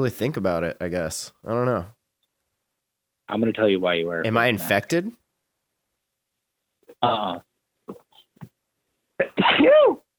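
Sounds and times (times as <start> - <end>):
speech: 0.0 - 2.0, 3.3 - 5.2, 7.0 - 8.0
person sneezing: 9.2 - 10.0.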